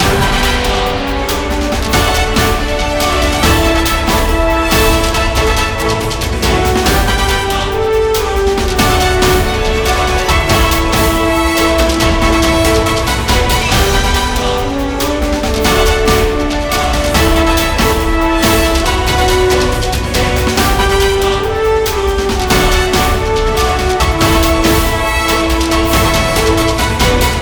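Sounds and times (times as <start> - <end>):
uptempo ambient menu music: 0.0 - 27.4.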